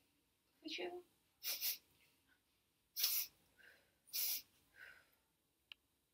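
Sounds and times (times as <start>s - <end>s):
speech: 0.7s - 1.7s
person sniffing the air like a wolf: 1.4s - 1.9s, 3.0s - 3.4s, 4.1s - 4.9s.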